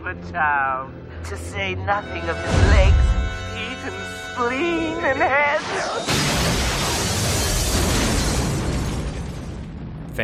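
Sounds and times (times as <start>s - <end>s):
speech: 0.1s - 6.7s
crackling debris: 5.9s - 10.2s
explosion rumble: 6.1s - 10.2s.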